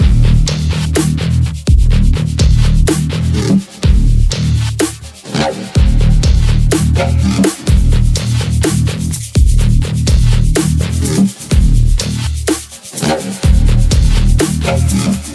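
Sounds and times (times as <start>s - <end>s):
emote music: 0.0s - 15.3s.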